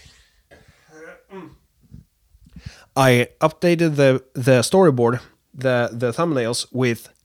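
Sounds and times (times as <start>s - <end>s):
person clearing throat: 0.5s - 1.7s
speech: 3.0s - 7.2s.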